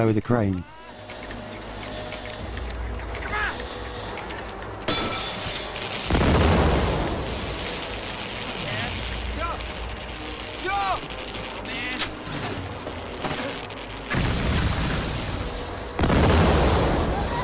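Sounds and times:
crackling hissing roar: 0.8 - 17.4
electric poles exploding in a line toward a workman on a crane: 4.8 - 17.4.

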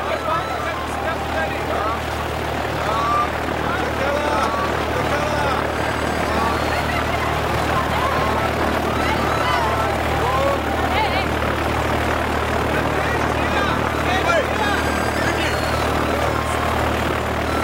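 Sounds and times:
indistinct voices murmuring: 0.0 - 17.6
laughter: 0.0 - 17.6
propeller plane engine droning while taxiing on a dusty runway: 0.0 - 17.6.

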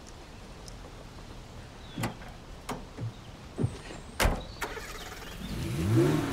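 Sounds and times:
red car engine rumbling as it drives off: 0.0 - 6.3
red car door thumps and clunks: 2.0 - 4.5.

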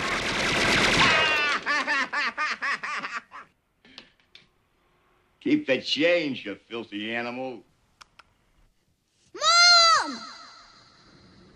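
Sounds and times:
machine-gun fire from a black-and-white gangster film on a TV: 0.0 - 1.9
laughter-like vocal sounds: 1.1 - 3.6
speech: 5.4 - 7.7.

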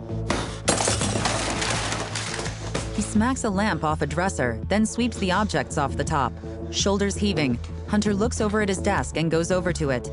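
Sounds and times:
mirror glass shattering: 0.7 - 2.9
speech: 3.0 - 10.1.

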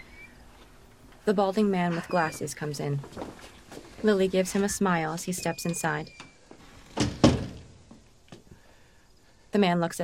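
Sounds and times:
speech: 1.3 - 6.2, 9.6 - 10.0
door being opened with dull thunks: 5.4 - 8.0.

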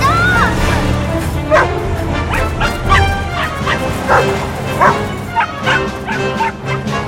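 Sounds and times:
continuous low rumble: 0.0 - 7.0
puppies barking and yipping while chasing a truck: 0.0 - 7.0
puppies whimpering while chasing a truck: 1.5 - 7.0.

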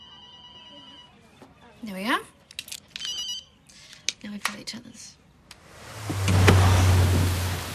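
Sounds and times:
speech: 1.8 - 2.4, 4.2 - 5.2
heavy rain pouring: 5.6 - 7.7.

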